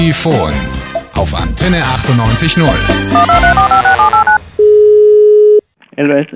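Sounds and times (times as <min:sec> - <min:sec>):
speech: 0:00.0 - 0:04.2, 0:06.0 - 0:06.3
steady continuous electronic tone on the phone line: 0:03.2 - 0:05.6.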